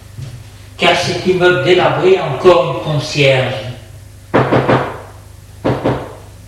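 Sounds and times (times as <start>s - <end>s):
speech: 0.8s - 3.6s
knocking on a wooden door: 4.3s - 6.3s.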